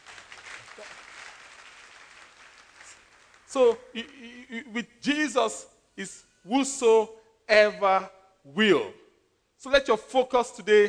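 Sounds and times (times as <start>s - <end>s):
crowd clapping in a large room: 0.0s - 3.8s
speech: 3.5s - 9.0s, 9.6s - 10.8s.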